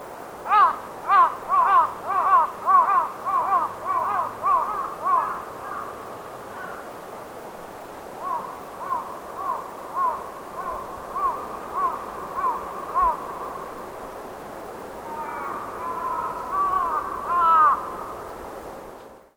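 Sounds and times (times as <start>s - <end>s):
background hiss: 0.0s - 19.3s
crow calling while moving: 0.5s - 7.0s, 8.2s - 13.8s, 15.0s - 18.4s.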